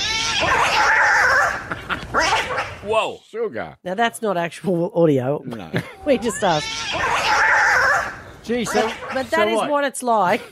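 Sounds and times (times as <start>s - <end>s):
cats fighting and screaming: 0.0s - 1.6s, 6.1s - 9.4s
speech: 2.8s - 7.2s, 8.5s - 10.5s.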